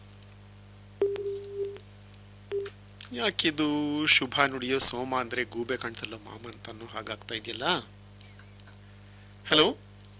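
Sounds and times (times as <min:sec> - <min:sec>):
telephone busy tone after a dropped call: 0:01.0 - 0:01.8
speech: 0:03.2 - 0:08.0, 0:09.5 - 0:09.8.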